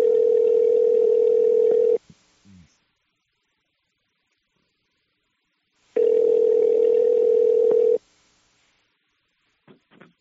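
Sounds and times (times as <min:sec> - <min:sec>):
telephone ringing out with electronic ring tones: 0:00.0 - 0:02.0, 0:06.0 - 0:08.0.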